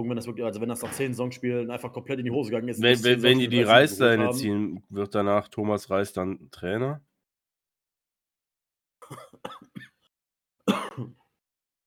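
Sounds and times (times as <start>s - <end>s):
speech: 0.0s - 7.1s, 10.7s - 11.2s
person coughing: 9.0s - 10.0s, 10.6s - 11.3s.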